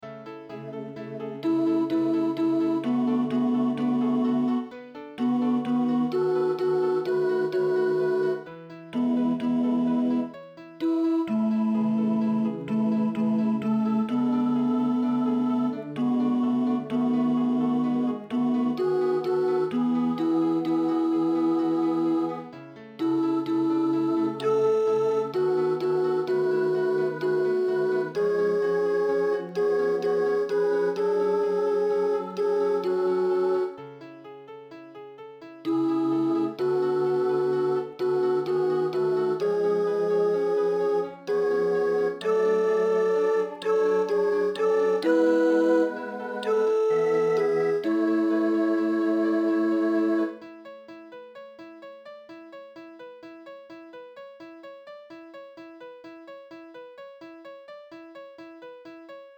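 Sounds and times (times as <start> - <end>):
alto voice singing: 0.1 - 34.0, 35.6 - 50.6.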